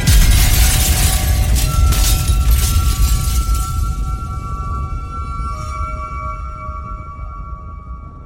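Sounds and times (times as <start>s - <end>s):
glass mirror shattering into pieces: 0.0s - 4.4s.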